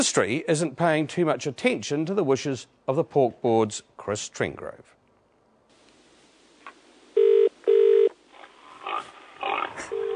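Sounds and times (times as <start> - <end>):
speech: 0.0 - 5.0
telephone ring tones: 7.2 - 8.2, 9.9 - 10.1.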